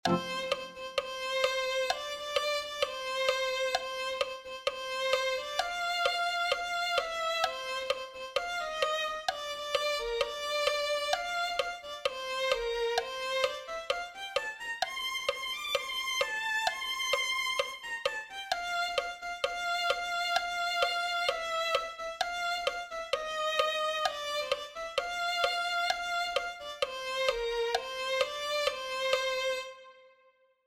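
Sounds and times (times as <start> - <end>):
violin melody: 0.0 - 30.4.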